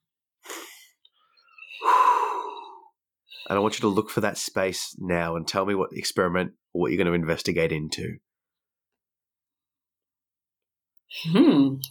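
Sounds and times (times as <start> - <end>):
person taking a deep breath: 0.4 - 3.6
speech: 3.5 - 8.2, 11.2 - 11.9.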